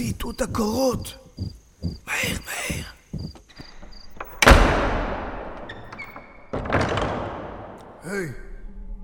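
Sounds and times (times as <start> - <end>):
speech: 0.0 - 2.9, 8.1 - 8.5
heavy door slamming: 4.2 - 7.8.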